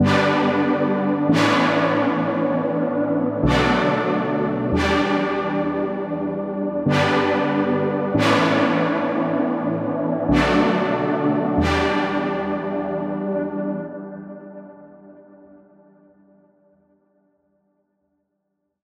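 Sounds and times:
synth pad chords in G: 0.0 - 14.9.

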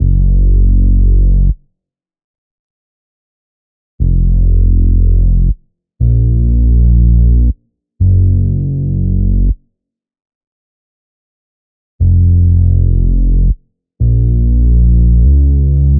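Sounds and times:
synth bass in A minor: 0.0 - 1.6, 4.0 - 9.6, 12.0 - 15.9.

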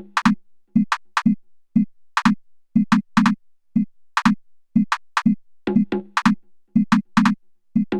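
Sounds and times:
percussion: 0.0 - 1.4, 2.2 - 3.4, 4.2 - 7.9.

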